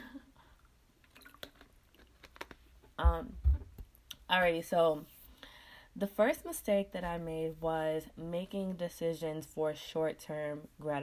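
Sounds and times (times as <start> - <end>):
person sipping and swallowing water: 1.0 - 2.6
speech: 3.0 - 3.5, 4.3 - 5.1, 6.0 - 11.0.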